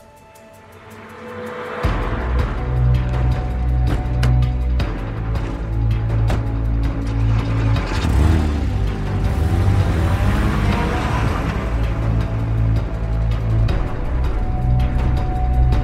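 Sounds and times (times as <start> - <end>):
SUV engine running as the vehicle drives off: 1.8 - 15.7.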